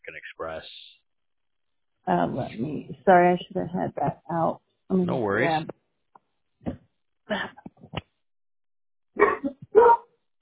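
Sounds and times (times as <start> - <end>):
speech: 0.1 - 0.9, 2.1 - 5.8, 6.7 - 7.6
dog barking: 9.2 - 10.1.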